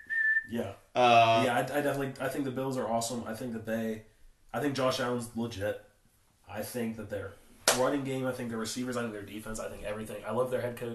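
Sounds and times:
person whistling a high note mimicking a referee's whistle: 0:00.0 - 0:01.4
speech: 0:00.5 - 0:05.9, 0:06.5 - 0:10.9.

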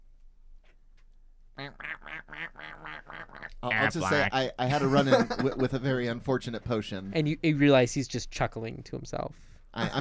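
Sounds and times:
person imitating duck quacks: 0:01.6 - 0:04.3
speech: 0:03.9 - 0:10.0.

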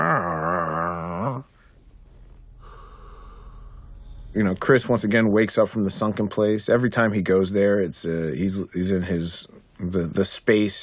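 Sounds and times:
voice imitating a wary dog growling: 0:00.0 - 0:01.5
speech: 0:04.4 - 0:10.8.

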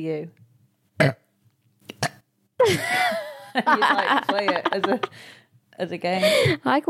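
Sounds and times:
speech: 0:00.0 - 0:00.4, 0:01.0 - 0:01.2, 0:02.6 - 0:06.8
person burping with a croaking belch: 0:01.0 - 0:01.3, 0:01.9 - 0:02.3.

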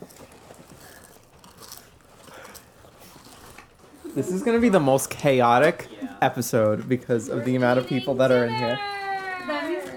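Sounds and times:
biting and crunching a cinnamon twist: 0:00.0 - 0:04.1
speech: 0:04.2 - 0:08.9.

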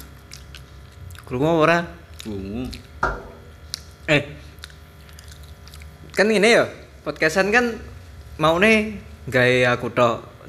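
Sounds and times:
chewing a crunchy fried banana snack: 0:00.0 - 0:07.6
low steady hum: 0:00.0 - 0:10.4
speech: 0:01.3 - 0:03.3, 0:04.1 - 0:04.4, 0:06.2 - 0:10.3.

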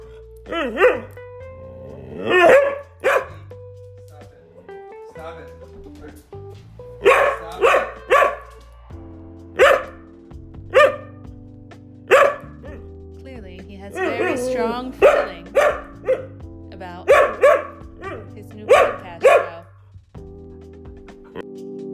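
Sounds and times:
dog barking: 0:00.5 - 0:01.1, 0:02.2 - 0:03.5, 0:07.0 - 0:08.6, 0:09.6 - 0:10.0, 0:10.7 - 0:11.2, 0:12.1 - 0:12.9, 0:14.0 - 0:16.4, 0:17.1 - 0:19.7
speech: 0:00.5 - 0:01.2, 0:14.6 - 0:15.0.

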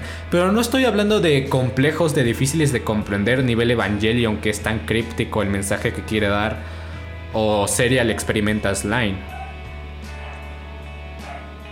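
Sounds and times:
speech: 0:00.3 - 0:09.4
dogs barking: 0:09.2 - 0:10.6, 0:11.2 - 0:11.7.

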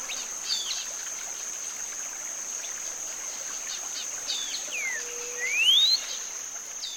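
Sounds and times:
steady high insect-like hiss: 0:00.0 - 0:06.9
bird singing phrases that each sound like a question: 0:04.8 - 0:06.0.

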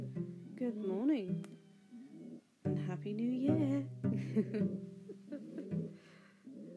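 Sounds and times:
pet pigeon cooing: 0:00.4 - 0:02.6, 0:05.1 - 0:06.7
speech: 0:02.9 - 0:04.9
laughter: 0:04.1 - 0:05.9.

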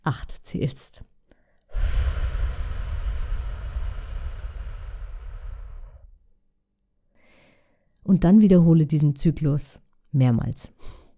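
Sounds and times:
speech: 0:00.0 - 0:01.1, 0:08.1 - 0:11.0
slow full exhale through the mouth during a calming breathing exercise: 0:01.7 - 0:06.2.

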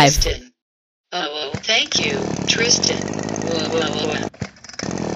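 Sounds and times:
speech: 0:00.0 - 0:00.5, 0:01.1 - 0:05.0
voice imitating a lawnmower engine revving: 0:01.8 - 0:04.3.

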